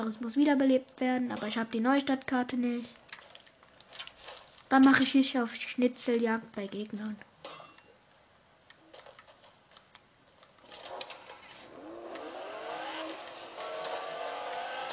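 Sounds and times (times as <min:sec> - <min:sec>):
speech: 0:00.0 - 0:03.0, 0:04.7 - 0:07.3
video game car engine accelerating: 0:11.6 - 0:14.9.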